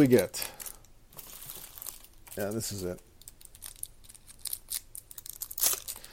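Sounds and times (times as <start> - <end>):
speech: 0.0 - 0.6, 2.4 - 3.1
pack of football trading cards torn open: 1.2 - 6.1.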